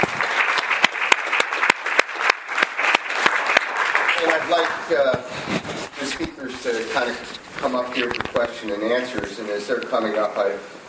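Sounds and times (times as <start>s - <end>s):
audience applauding: 0.0s - 5.1s
speech: 4.5s - 10.8s.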